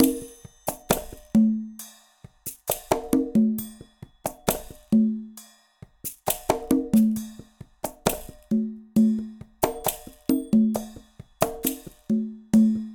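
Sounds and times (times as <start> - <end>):
latin percussion: 0.0 - 12.9.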